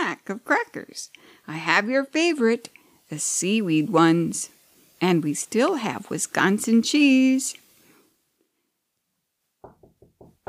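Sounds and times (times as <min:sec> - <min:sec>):
faint room noise: 0:00.0 - 0:10.4
speech: 0:00.3 - 0:07.6
firm knocking on a door: 0:09.6 - 0:10.4.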